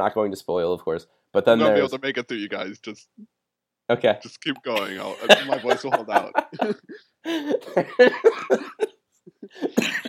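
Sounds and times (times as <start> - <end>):
speech: 0.0 - 10.0
laughter: 4.8 - 10.0
person coughing harshly: 9.6 - 10.0.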